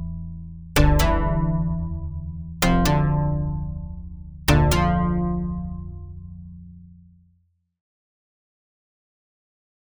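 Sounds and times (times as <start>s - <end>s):
synth riff without delay: 0.8s - 2.1s, 2.6s - 6.2s.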